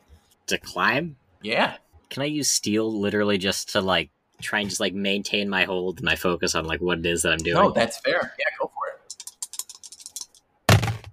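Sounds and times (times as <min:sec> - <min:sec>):
speech: 0:00.5 - 0:08.5
dice rattling and landing against a surface: 0:09.1 - 0:11.0.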